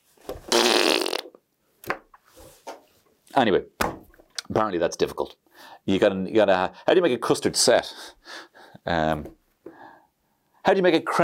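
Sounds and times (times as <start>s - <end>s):
loud rasping fart sound effect: 0.4s - 1.3s
speech: 3.4s - 3.8s, 4.6s - 9.8s, 10.6s - 11.2s.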